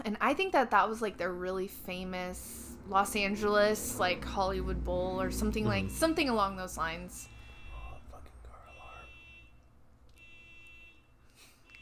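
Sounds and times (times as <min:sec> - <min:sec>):
speech: 0:00.0 - 0:07.3
car alarm: 0:04.4 - 0:11.7.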